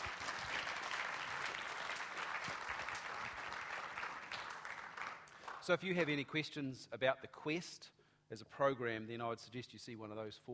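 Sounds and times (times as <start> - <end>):
audience applause: 0.0 - 5.6
speech: 5.6 - 10.5.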